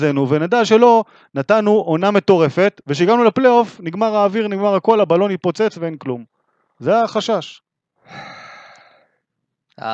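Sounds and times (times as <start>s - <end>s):
speech: 0.0s - 8.4s, 9.8s - 9.9s
heavy breathy exhale blown into the microphone: 8.1s - 9.2s.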